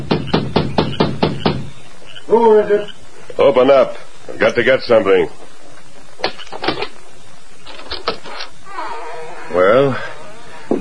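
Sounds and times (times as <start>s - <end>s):
knocking on a wooden door: 0.0s - 1.7s
speech: 2.3s - 5.4s, 9.6s - 10.1s.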